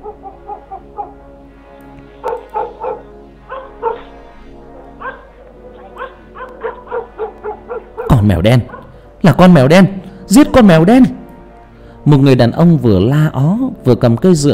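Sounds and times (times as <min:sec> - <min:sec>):
dogs barking loudly around a village: 0:00.0 - 0:01.2, 0:02.2 - 0:09.1
speech: 0:08.2 - 0:11.2, 0:12.0 - 0:14.5.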